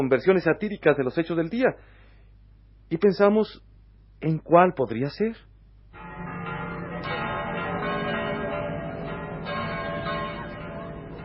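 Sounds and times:
speech: 0.0s - 2.0s, 2.9s - 6.3s
church bells ringing: 6.0s - 11.2s.

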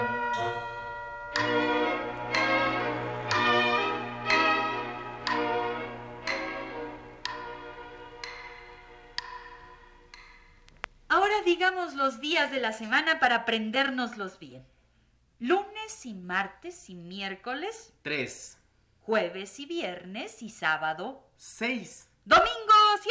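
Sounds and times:
clock bell chiming the hours: 0.0s - 10.6s
speech: 11.6s - 14.8s, 15.4s - 23.0s.

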